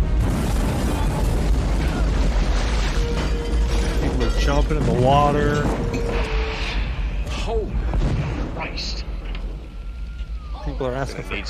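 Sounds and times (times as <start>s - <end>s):
helicopters exploding in an action film: 0.0s - 9.1s
loud continuous roar of blasts and rumbling: 0.0s - 10.7s
speech: 4.7s - 6.0s, 10.8s - 11.4s.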